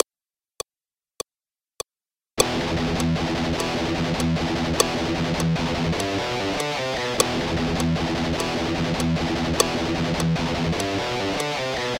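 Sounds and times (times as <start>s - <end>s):
tight rhythm guitar playing ahead of the beat: 2.4s - 11.9s.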